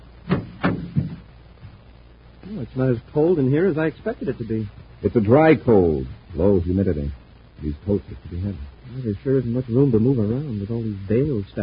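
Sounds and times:
heavy door thudding shut: 0.3 - 1.3
speech: 2.5 - 11.6.

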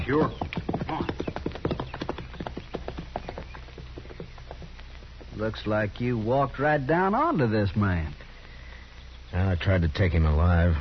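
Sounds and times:
horse hooves clip-clopping in a walking rhythm: 0.0 - 7.4
speech: 0.1 - 1.2, 5.4 - 8.2, 9.3 - 10.8.

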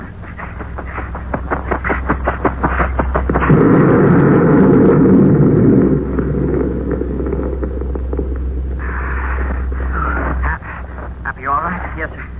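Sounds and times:
steady low hum: 0.0 - 12.3
deep rumbling blast from a dropped crate of explosives on Jupiter's fourth moon: 2.6 - 11.2
voices talking: 8.7 - 12.3.

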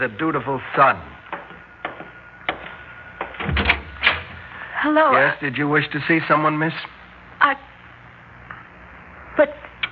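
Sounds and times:
speech: 0.0 - 1.2, 4.8 - 7.7
door clunking and creaking open: 1.4 - 4.4.

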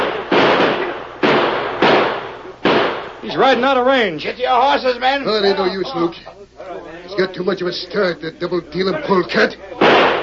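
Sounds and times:
gunshots fired at a fleeing rider: 0.0 - 3.2, 9.8 - 10.2
speech: 3.3 - 10.1.

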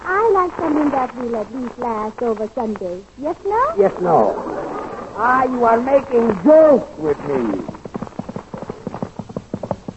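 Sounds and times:
speech: 0.4 - 4.6, 5.2 - 7.7
horse hooves clip-clopping in a quick trot: 7.5 - 9.9.

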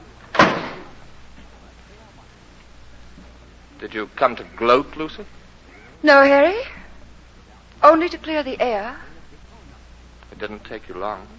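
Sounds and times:
door shutting: 0.2 - 1.0
speech: 3.8 - 5.4, 6.0 - 6.8, 7.8 - 9.1, 10.4 - 11.3.

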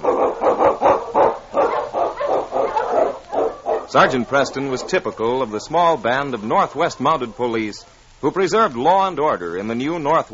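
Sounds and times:
sled dog barking: 0.0 - 5.2
speech: 3.9 - 10.3.

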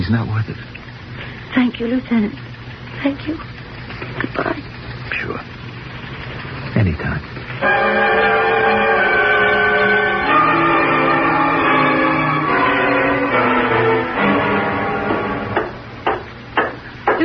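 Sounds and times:
speech: 0.1 - 0.8, 1.5 - 3.5, 4.2 - 5.5, 6.8 - 8.4
doorbell ringing: 7.6 - 15.7.

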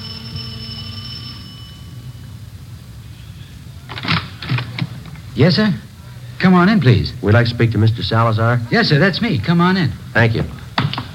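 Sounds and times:
doorbell at the front door of a house rung by police officers: 0.0 - 2.3
low hum: 0.0 - 11.1
speech: 5.4 - 10.6.

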